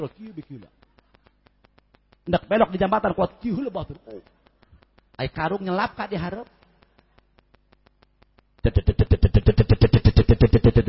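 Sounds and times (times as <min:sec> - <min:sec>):
speech: 0:00.0 - 0:00.8, 0:02.3 - 0:04.3, 0:05.2 - 0:06.6, 0:08.6 - 0:10.8
faint clicks: 0:00.6 - 0:02.3, 0:04.2 - 0:05.2, 0:06.5 - 0:08.6
voice imitating a motorbike taxi engine: 0:08.6 - 0:10.8.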